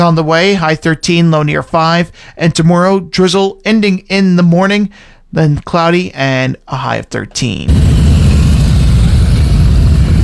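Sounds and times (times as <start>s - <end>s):
speech: 0.0s - 7.9s
motorcycles arriving in a parking lot with engines rumbling: 7.7s - 10.2s.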